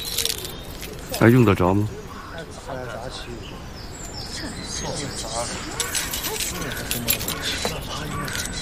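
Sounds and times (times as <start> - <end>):
keys jangling as they are handed over: 0.0 - 1.2, 5.8 - 8.5
indistinct voices murmuring: 0.0 - 8.5
speech: 1.1 - 2.0, 3.1 - 3.7, 4.4 - 8.5.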